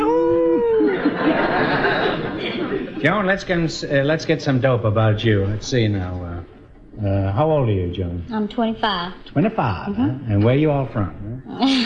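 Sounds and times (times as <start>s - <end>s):
man imitating a howl: 0.0s - 0.9s
crowd laughing and chattering: 0.0s - 6.4s, 9.4s - 11.8s
speech: 3.0s - 6.4s, 7.0s - 11.8s.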